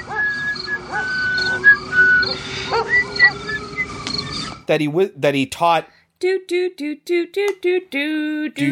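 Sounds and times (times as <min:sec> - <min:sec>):
man whistling a tune while walking through a backyard: 0:00.0 - 0:04.2
speech: 0:04.7 - 0:08.7.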